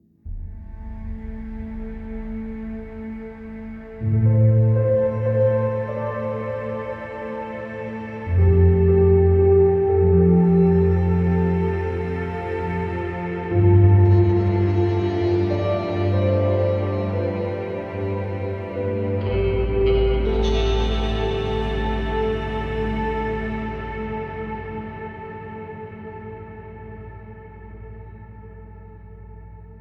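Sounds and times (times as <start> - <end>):
piano: 0.3 - 29.7.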